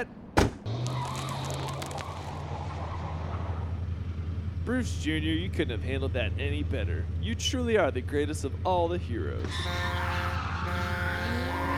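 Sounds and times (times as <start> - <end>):
speech: 0.0 - 0.2, 4.7 - 11.0
rumbling bus engine: 0.0 - 11.7
bus tires squealing in a skid: 0.7 - 3.9, 9.4 - 11.7.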